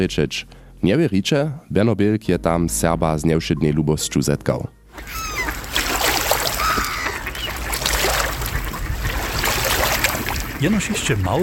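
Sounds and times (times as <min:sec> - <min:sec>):
speech: 0:00.0 - 0:05.2, 0:10.6 - 0:11.4
flock of ducks quacking on water: 0:05.0 - 0:11.4
flock of geese honking on water: 0:05.0 - 0:11.4
steady wash of water: 0:05.0 - 0:11.4.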